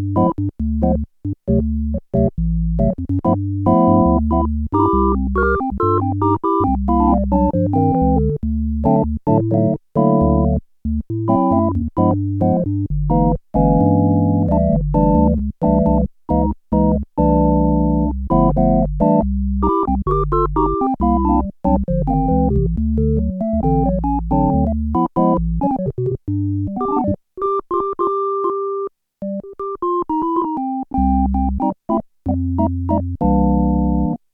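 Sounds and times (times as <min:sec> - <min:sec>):
Korg DW-8000 synthesizer organ sound: 0:00.2 - 0:34.2.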